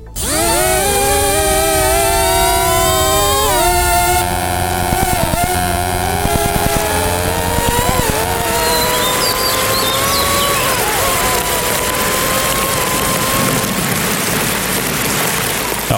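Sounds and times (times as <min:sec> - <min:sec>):
constant hiss: 0:00.0 - 0:15.9
rain-making drone electric motors whining: 0:00.0 - 0:15.9
sharp electric crackle: 0:00.0 - 0:15.9.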